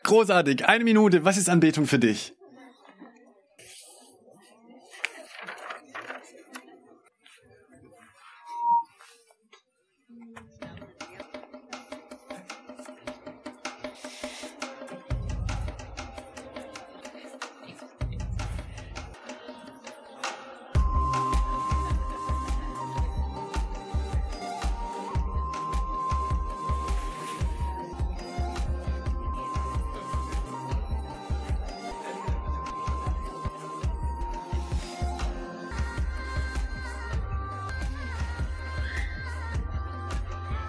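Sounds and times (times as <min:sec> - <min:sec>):
speech: 0:00.1 - 0:02.4
instrumental background music during a church service: 0:10.4 - 0:40.6.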